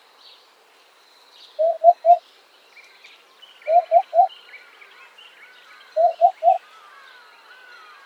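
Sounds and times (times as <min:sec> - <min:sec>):
quiet bird chatter: 0:00.0 - 0:08.0
Eurasian hoopoe hooting: 0:01.6 - 0:02.2, 0:03.7 - 0:04.3, 0:06.0 - 0:06.6.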